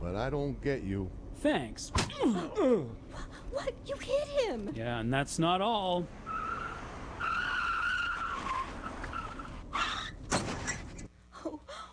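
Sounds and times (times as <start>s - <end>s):
speech: 0.0s - 6.2s
car tires squealing in a skid: 6.1s - 11.0s.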